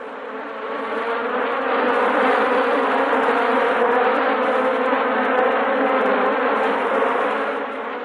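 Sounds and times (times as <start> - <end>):
honeybees buzzing: 0.0 - 8.0.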